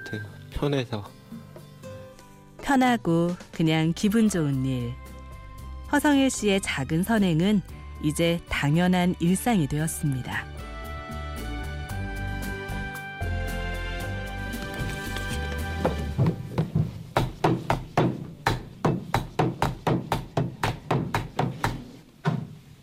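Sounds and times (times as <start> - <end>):
music: 0.0 - 20.9
speech: 0.1 - 1.2, 2.7 - 5.0, 5.9 - 10.5
post office date postmark hammer stamping: 15.9 - 22.5.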